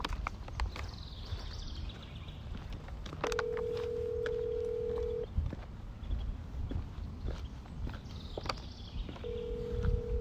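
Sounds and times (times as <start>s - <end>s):
constant noise: 0.0s - 10.2s
ringback tone of an outgoing phone call waiting to be answered: 3.3s - 5.2s, 9.2s - 10.2s.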